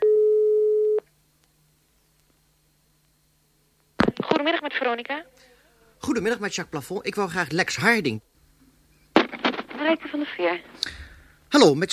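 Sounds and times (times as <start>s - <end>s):
telephone line tone while a call is being dialed: 0.0s - 1.0s
speech: 4.4s - 8.3s, 9.9s - 11.9s.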